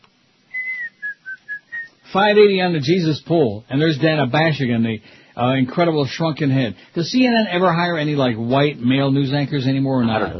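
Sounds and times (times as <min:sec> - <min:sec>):
person whistling a cheerful tune: 0:00.5 - 0:02.0
speech: 0:02.1 - 0:10.3.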